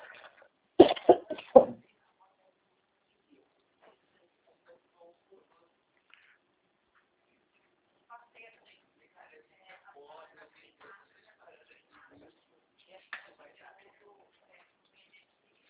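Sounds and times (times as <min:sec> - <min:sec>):
throat clearing: 0:00.8 - 0:01.6
person coughing: 0:00.8 - 0:01.7.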